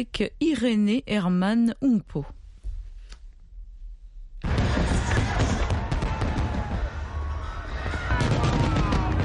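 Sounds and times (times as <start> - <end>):
speech: 0.0 - 2.4
fireworks exploding: 4.4 - 9.2.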